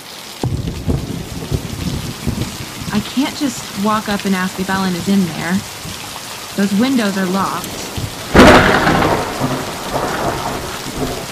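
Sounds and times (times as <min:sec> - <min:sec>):
heavy rain hissing: 0:00.0 - 0:11.3
thunderclap rumbling: 0:00.4 - 0:03.4, 0:07.6 - 0:11.3
speech: 0:02.9 - 0:05.8, 0:06.6 - 0:07.8.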